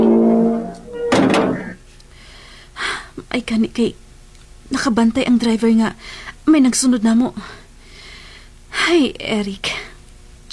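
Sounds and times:
gate clattering shut: 0:00.0 - 0:01.8
steady low tonal hum: 0:00.0 - 0:01.8
speech: 0:03.4 - 0:04.0, 0:04.7 - 0:07.6, 0:08.8 - 0:09.8.

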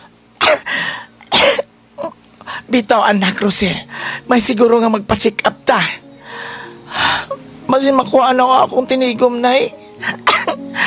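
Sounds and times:
harsh coughing from a persistent cough: 0:00.4 - 0:02.2, 0:10.1 - 0:10.7
speech: 0:02.7 - 0:06.0, 0:07.7 - 0:10.3.

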